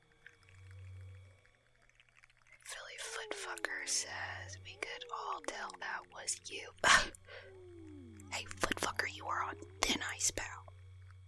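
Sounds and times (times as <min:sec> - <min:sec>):
faint higher whistly tones: 0:00.0 - 0:11.2
person moaning in imitation of whale song: 0:02.8 - 0:10.4
speech: 0:03.2 - 0:07.7, 0:08.3 - 0:10.7.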